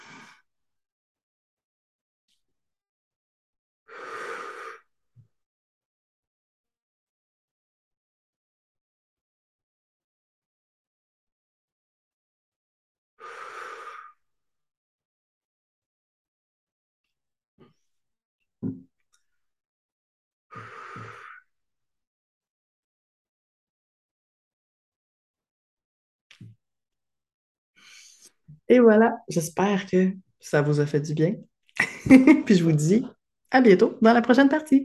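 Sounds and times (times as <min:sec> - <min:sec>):
deep slow breaths taken during a relaxation exercise: 0:13.2 - 0:14.2, 0:20.5 - 0:21.4
speech: 0:28.7 - 0:34.8.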